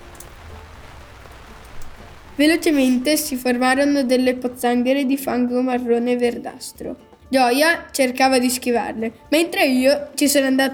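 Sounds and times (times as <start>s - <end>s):
steady rain pattering down on a trail: 0.0s - 4.9s
speech: 2.4s - 10.7s.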